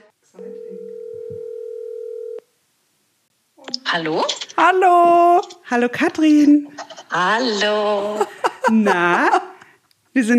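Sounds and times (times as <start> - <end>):
telephone ringback tone while a call is placed: 0.5 - 2.4
speech: 3.9 - 9.4, 10.2 - 10.3
laughter: 6.7 - 9.6.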